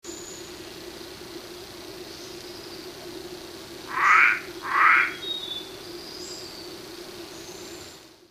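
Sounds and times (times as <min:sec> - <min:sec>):
Limnonectes hascheanus Hill Forest Frog call at Fraser's Hill, Peninsular Malaysia: 0:03.8 - 0:05.8.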